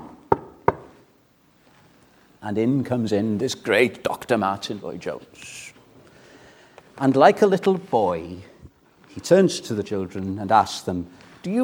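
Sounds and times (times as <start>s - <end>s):
knocking on a wooden door: 0.0s - 0.9s
speech: 2.4s - 5.8s, 7.0s - 8.5s, 9.2s - 11.6s.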